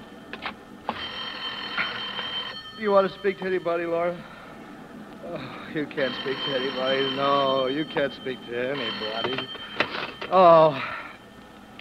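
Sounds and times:
telephone ringing with a bright trilling tone: 0.0s - 4.4s, 5.7s - 11.4s
speech: 2.8s - 4.4s, 5.3s - 9.7s, 10.3s - 11.0s.

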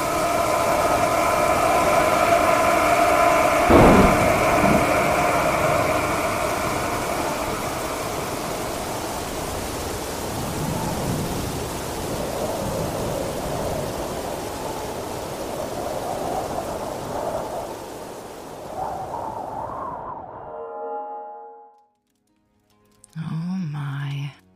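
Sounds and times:
heavy rain: 0.0s - 19.8s
storm wind: 0.0s - 21.3s
brief tonal sound: 20.3s - 21.9s
person speaking: 23.1s - 24.4s.

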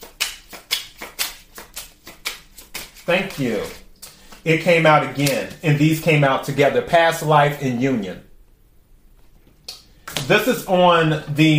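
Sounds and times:
tarot cards being handled and shuffled: 0.0s - 5.6s
speech: 3.1s - 3.8s, 4.4s - 8.3s, 10.3s - 11.5s.

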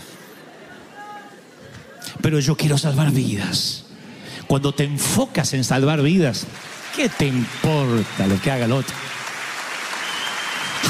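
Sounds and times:
speech: 2.3s - 3.8s, 4.5s - 9.2s
audience applause: 5.8s - 10.8s.

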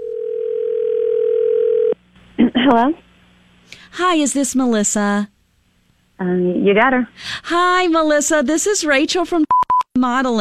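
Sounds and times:
telephone dial tone: 0.0s - 2.0s
speech: 2.7s - 3.0s, 3.9s - 5.4s, 6.2s - 10.3s.

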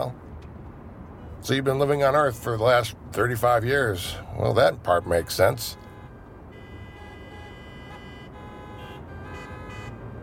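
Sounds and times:
dense rush hour traffic rumbling: 0.0s - 10.2s
speech: 1.4s - 5.8s
car horns honking: 4.8s - 10.2s.

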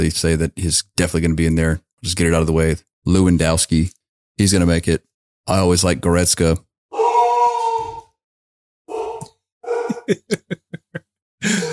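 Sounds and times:
speech: 0.0s - 6.7s, 10.1s - 11.7s
large Labrador retriever dog whining howl: 7.0s - 8.1s, 8.9s - 10.1s
large Labrador retriever dog gruff huffs and barks: 9.7s - 10.2s
laughter: 9.7s - 11.7s.

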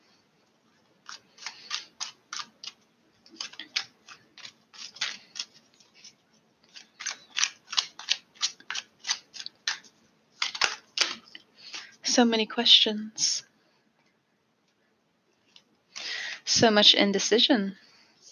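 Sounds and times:
deck of tarot cards being shuffled: 1.0s - 11.9s
speech: 12.2s - 13.5s, 16.6s - 17.8s.

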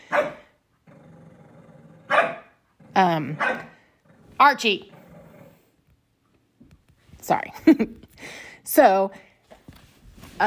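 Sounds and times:
dog barking: 0.0s - 0.5s, 2.1s - 2.6s, 3.4s - 3.8s
dog growling: 0.8s - 2.2s, 2.8s - 3.4s, 4.0s - 5.8s
speech: 3.0s - 3.7s, 4.4s - 4.9s, 7.3s - 9.3s.

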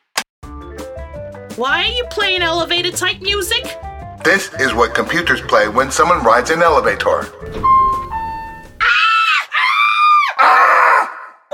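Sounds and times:
speech: 1.6s - 7.8s
person screaming: 8.8s - 11.4s.

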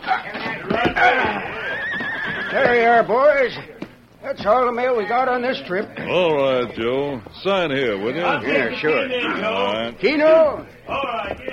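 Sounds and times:
horse neighing as stagecoach halts: 0.7s - 3.1s
speech: 2.6s - 11.5s.

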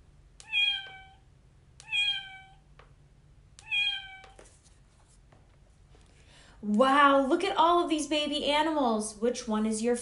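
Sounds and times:
kitten meowing: 0.4s - 1.2s, 1.8s - 2.6s, 3.6s - 4.4s
speech: 6.6s - 10.0s.

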